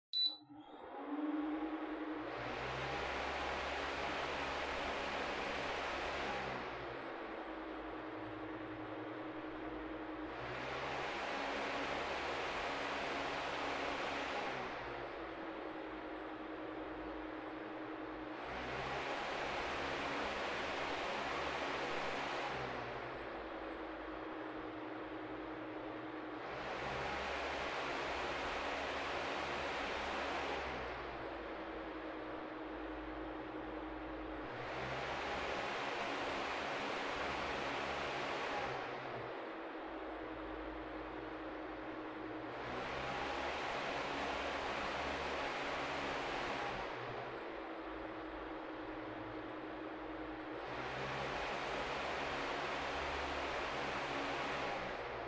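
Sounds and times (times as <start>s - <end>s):
electric fan running: 1.6s - 55.2s.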